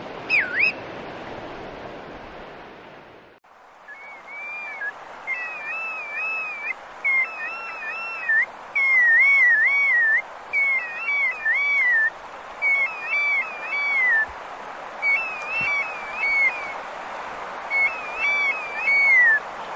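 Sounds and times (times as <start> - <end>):
low background hiss: 0.0 - 19.7
bristle-thighed curlew Numenius tahitiensis whistling: 0.3 - 0.8, 3.9 - 14.3, 15.0 - 16.8, 17.7 - 19.4.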